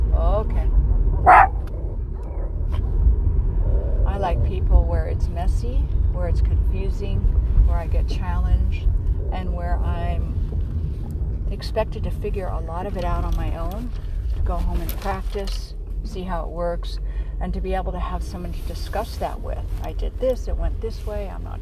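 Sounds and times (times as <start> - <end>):
steady low engine-like rumble: 0.0 - 21.6
female dog barking: 1.2 - 1.6
speech: 5.6 - 10.4, 11.5 - 21.6.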